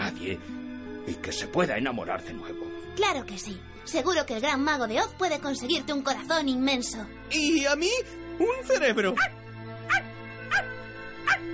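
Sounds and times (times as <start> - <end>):
speech: 0.2 - 10.7
small dog giving high-pitched yips: 9.9 - 11.4.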